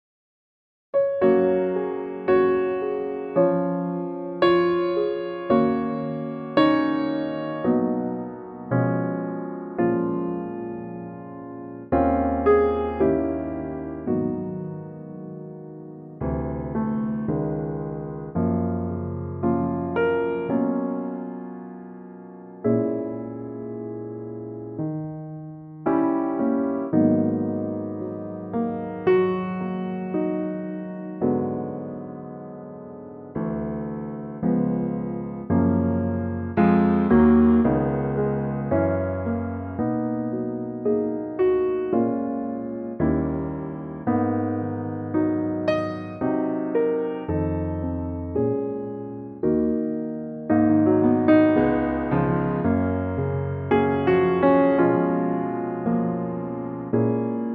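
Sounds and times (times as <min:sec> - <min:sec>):
ballad piano arrangement in G flat: 0:01.0 - 0:57.5.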